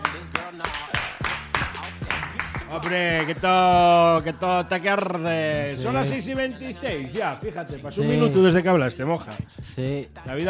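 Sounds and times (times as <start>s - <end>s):
sparse hesitant hand claps: 0.0s - 3.6s
speech: 2.7s - 10.4s.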